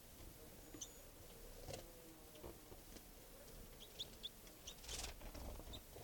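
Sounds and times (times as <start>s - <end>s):
brief rustle: 0.0s - 6.0s
soft scattered bird chirps: 0.6s - 1.2s, 3.8s - 4.9s.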